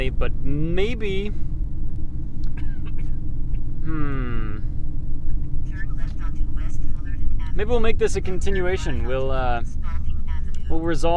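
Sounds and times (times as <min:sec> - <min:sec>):
speech: 0:00.0 - 0:01.5, 0:03.9 - 0:04.5, 0:07.6 - 0:09.8, 0:10.7 - 0:11.1
road and engine rumble inside a moving car: 0:00.0 - 0:11.1.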